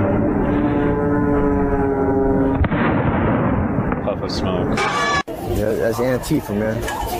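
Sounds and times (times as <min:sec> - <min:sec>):
loud steady harmonic drone: 0:00.0 - 0:02.7
gunshot: 0:02.6 - 0:04.2
speech: 0:04.3 - 0:05.1, 0:05.9 - 0:07.1.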